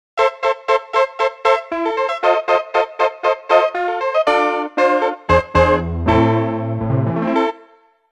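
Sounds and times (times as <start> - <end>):
honky tonk piano: 0.2 - 7.6.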